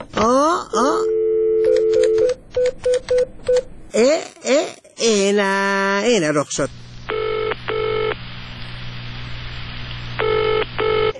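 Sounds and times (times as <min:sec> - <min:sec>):
speech: 0:00.2 - 0:01.0, 0:04.0 - 0:06.8
steady telephone tone: 0:01.0 - 0:03.6, 0:07.1 - 0:08.2, 0:10.2 - 0:11.1.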